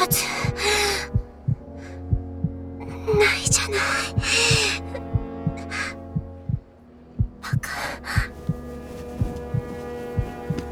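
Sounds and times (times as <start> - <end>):
faint low hum: 0.0 - 10.7
heartbeat thumping in a lub-dub rhythm: 0.0 - 10.7
speech: 0.1 - 0.3.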